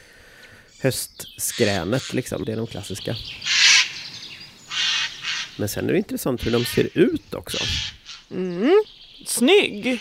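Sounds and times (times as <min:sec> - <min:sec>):
speech: 0:00.8 - 0:03.5, 0:05.6 - 0:09.9
corvid giving unusual harsh rasping call: 0:03.4 - 0:08.4, 0:09.8 - 0:09.9.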